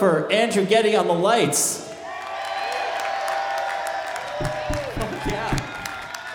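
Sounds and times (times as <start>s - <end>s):
speech: 0.0s - 1.9s
crowd applauding: 2.1s - 6.3s.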